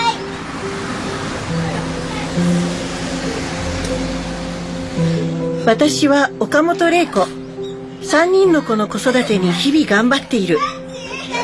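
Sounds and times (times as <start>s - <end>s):
car passing by on a road: 0.0s - 7.5s
speech: 2.4s - 2.7s, 5.7s - 7.4s, 8.0s - 10.8s.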